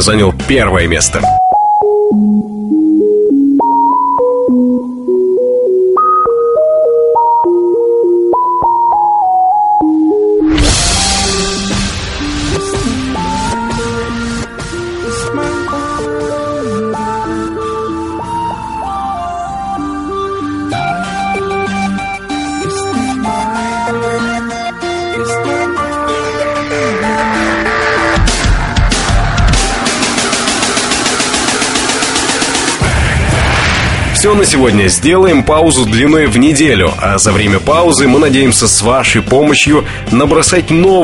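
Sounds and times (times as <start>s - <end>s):
speech: 0.0s - 1.5s, 34.4s - 41.0s
thin beepy rock tune ringtone melody from a mobile phone: 1.2s - 32.4s
full-band rock recording with heavy guitars and drums: 10.5s - 18.8s, 19.7s - 33.1s.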